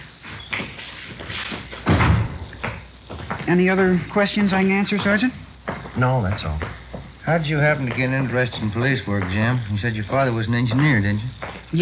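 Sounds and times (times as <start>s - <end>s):
door closing thud: 1.8s - 2.8s
speech: 3.5s - 5.4s, 6.0s - 11.8s.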